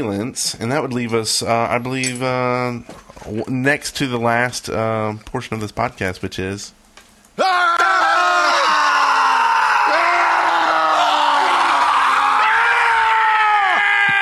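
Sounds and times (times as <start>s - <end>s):
speech: 0.0s - 6.8s
several overlapping human voices screaming and yelling: 7.4s - 14.2s.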